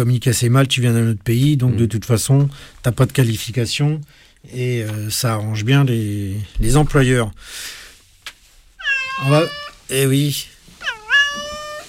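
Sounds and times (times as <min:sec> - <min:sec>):
speech: 0:00.0 - 0:07.8, 0:09.2 - 0:11.5
cat meowing: 0:08.8 - 0:09.8, 0:10.8 - 0:11.8.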